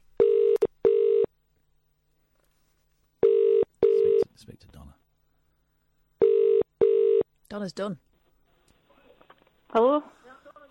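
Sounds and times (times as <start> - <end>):
steady electronic telephone tones: 0.2 - 1.3, 3.2 - 4.3, 6.2 - 7.2
speech: 7.6 - 8.1, 9.7 - 10.6.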